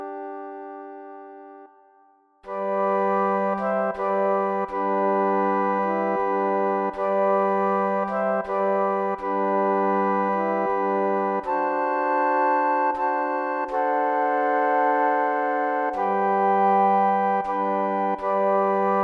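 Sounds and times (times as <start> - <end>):
flute ensemble playing: 2.5 - 19.0.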